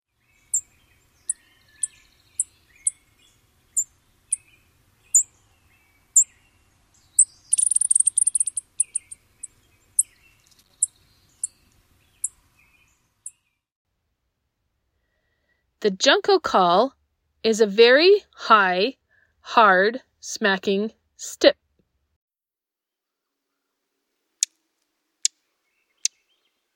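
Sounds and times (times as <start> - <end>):
chipping sparrow buzzy twittering: 0.4 - 5.4, 6.1 - 6.4, 7.0 - 13.4
chipping sparrow chip notes: 7.2 - 10.9
speech: 15.8 - 21.6.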